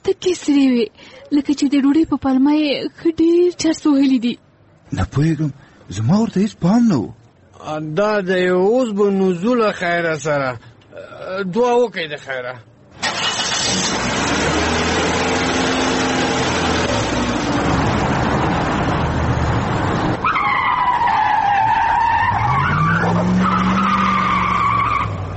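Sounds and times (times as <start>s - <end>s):
speech: 0.1s - 12.7s
speeding car engine roaring: 12.9s - 25.3s
skidding car tires screeching: 13.0s - 25.3s.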